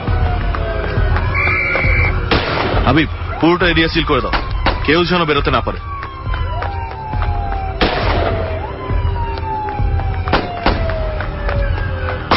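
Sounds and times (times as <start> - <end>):
continuous wailing police siren: 0.0 - 2.3, 2.9 - 12.3
gunshots fired at a fleeing suspect during a police pursuit: 2.2 - 3.0, 7.8 - 8.6, 10.3 - 10.9
speech: 2.9 - 5.9.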